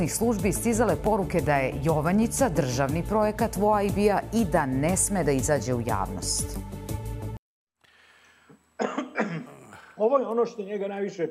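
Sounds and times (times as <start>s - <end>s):
speech: 0.0s - 6.8s, 10.0s - 11.2s
person coughing after choking on Uruguayan grapes: 8.8s - 10.0s.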